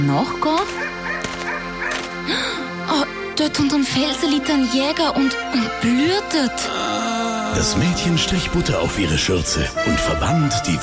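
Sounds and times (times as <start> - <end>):
speech: 0.0 - 1.0, 2.3 - 10.8
steady tonal background: 0.0 - 10.8
dog barking: 0.8 - 2.0.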